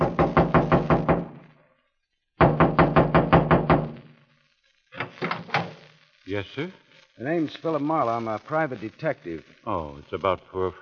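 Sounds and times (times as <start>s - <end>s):
firm rapid knocking on a trailer door: 0.0s - 1.4s, 2.4s - 3.9s
speech: 6.3s - 10.8s.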